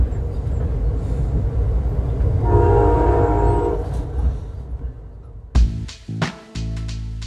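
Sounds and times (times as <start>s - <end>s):
train rumbling along tracks beside the California coastline: 0.0s - 5.6s
train horn: 2.4s - 4.3s.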